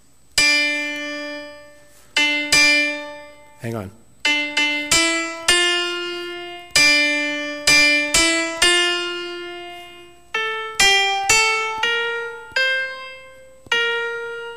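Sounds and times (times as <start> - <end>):
hymn melody in D minor: 0.4 - 14.5
speech: 3.6 - 4.0.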